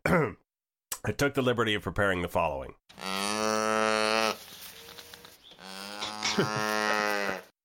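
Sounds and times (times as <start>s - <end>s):
speech: 1.0s - 3.1s, 6.4s - 6.8s
cow mooing: 3.0s - 4.4s, 5.6s - 7.5s.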